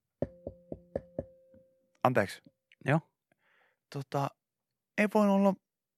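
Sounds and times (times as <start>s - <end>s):
knocking on a window: 0.2s - 1.4s
speech: 2.0s - 3.1s, 3.9s - 4.4s, 5.0s - 5.6s.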